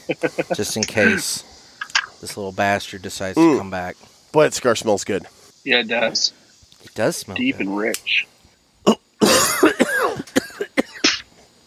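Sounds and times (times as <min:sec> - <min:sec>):
speech: 0:00.1 - 0:01.5, 0:02.2 - 0:09.0
man coughing into a microphone: 0:00.5 - 0:01.3, 0:08.9 - 0:11.2.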